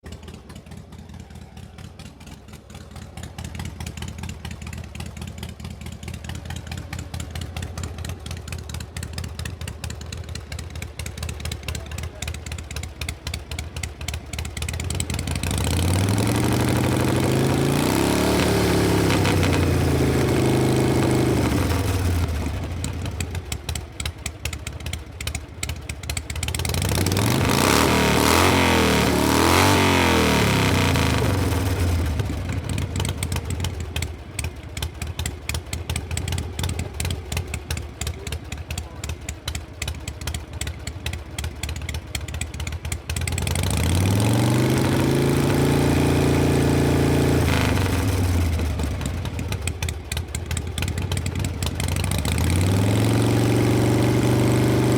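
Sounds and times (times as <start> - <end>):
panhead motorcycle engine: 0.0 - 54.9.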